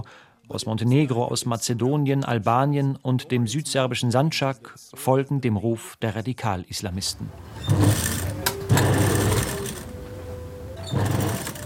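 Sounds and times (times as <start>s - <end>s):
speech: 0.0s - 8.5s
sewing machine running: 7.3s - 11.6s.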